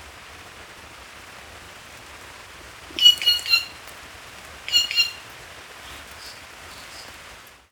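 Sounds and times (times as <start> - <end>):
Black-crested warbler Myiothlypis nigrocristata calling with sharp chips: 3.0 - 3.8, 4.7 - 5.3.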